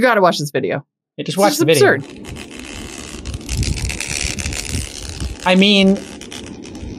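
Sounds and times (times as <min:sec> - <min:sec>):
speech: 0:00.0 - 0:02.5, 0:05.4 - 0:06.1
new iPhone camera rattling buzz: 0:01.8 - 0:06.9.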